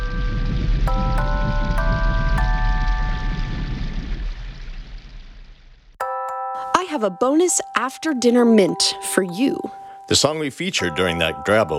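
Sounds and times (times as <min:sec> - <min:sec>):
clear bell-like tones chiming: 0:00.0 - 0:04.2, 0:06.0 - 0:11.7
steady hissing rain falling: 0:00.0 - 0:07.6, 0:09.2 - 0:11.7
speech: 0:07.0 - 0:11.7.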